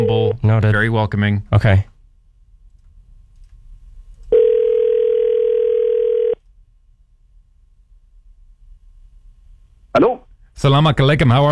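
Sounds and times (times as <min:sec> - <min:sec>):
faint low hum: 0:00.0 - 0:11.5
speech: 0:00.3 - 0:01.9, 0:10.0 - 0:11.5
steady telephone dial or ringback tone: 0:04.3 - 0:06.4.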